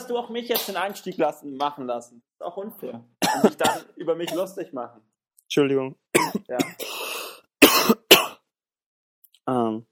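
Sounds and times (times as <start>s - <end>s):
speech: 0.1s - 6.9s, 9.5s - 9.9s
person coughing: 3.2s - 4.6s, 6.2s - 8.4s
short breathy sound: 6.8s - 7.5s.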